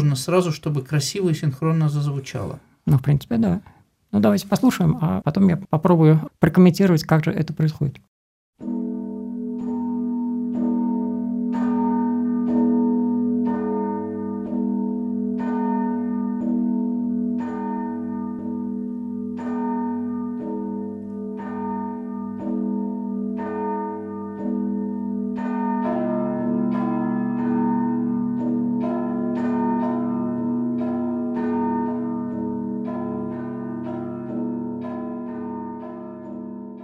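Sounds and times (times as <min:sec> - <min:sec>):
speech: 0:00.0 - 0:08.7
two large swinging monastery church bells ringing: 0:08.6 - 0:36.8.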